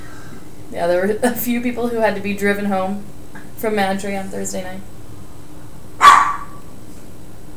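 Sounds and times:
speech: 0:00.7 - 0:04.9
dog barking: 0:06.0 - 0:06.6.

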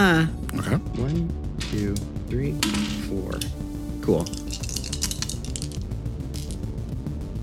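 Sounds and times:
speech: 0:00.0 - 0:04.6
dice clattering while being sorted and counted: 0:04.2 - 0:06.6.

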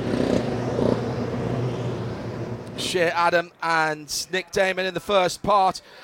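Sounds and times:
race car engine revving in a pit lane: 0:00.0 - 0:02.9
race car engines rumbling through a pit lane: 0:00.0 - 0:04.8
speech: 0:02.9 - 0:06.0.

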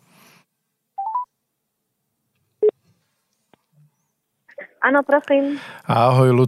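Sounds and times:
electronic phone keypad tones of a number being dialed: 0:01.0 - 0:01.3
speech: 0:04.8 - 0:06.4.

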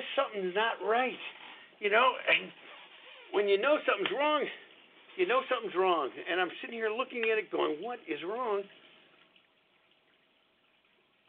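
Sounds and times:
water trickling from an aquarium filter on a fish tank: 0:00.0 - 0:11.2
speech: 0:00.4 - 0:02.7, 0:03.3 - 0:04.6, 0:05.2 - 0:08.8.

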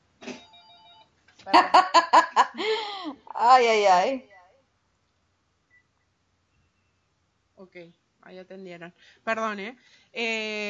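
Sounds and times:
telephone ringing for an incoming call: 0:00.3 - 0:01.2
speech: 0:01.5 - 0:01.9, 0:02.6 - 0:04.3, 0:07.7 - 0:10.6.

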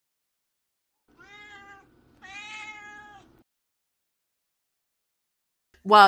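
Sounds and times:
cat meowing: 0:01.1 - 0:03.4
speech: 0:05.8 - 0:06.0.

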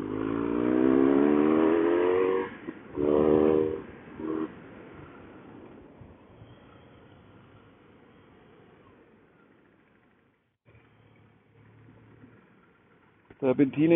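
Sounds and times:
car engine revving climbing a mountain pass: 0:00.0 - 0:04.6
speech: 0:13.5 - 0:13.9.

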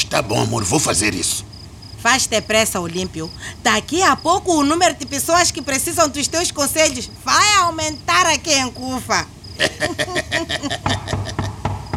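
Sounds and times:
speech: 0:00.1 - 0:11.2
laughter: 0:09.6 - 0:11.6
knocking on a door: 0:10.7 - 0:11.9.

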